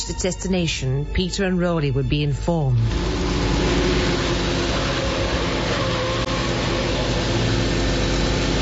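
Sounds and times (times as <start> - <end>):
speech: 0.1 - 3.3
car engine droning while cruising: 2.8 - 8.6
road noise: 2.8 - 8.6.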